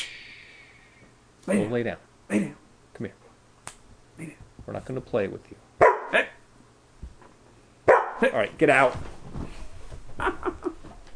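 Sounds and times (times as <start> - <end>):
speech: 1.5 - 3.2, 4.2 - 6.3, 8.2 - 9.1, 10.2 - 10.6
dog barking: 5.8 - 6.4, 7.9 - 8.2.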